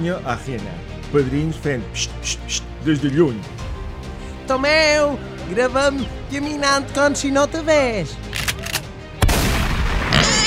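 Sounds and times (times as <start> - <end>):
speech: 0.0 - 3.7, 4.5 - 8.3
shotgun blast sound effect: 9.2 - 10.4.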